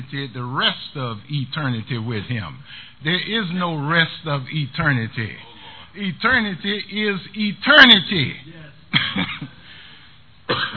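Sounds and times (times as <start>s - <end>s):
speech: 0.0s - 9.6s
person coughing: 8.9s - 9.6s, 10.5s - 10.7s.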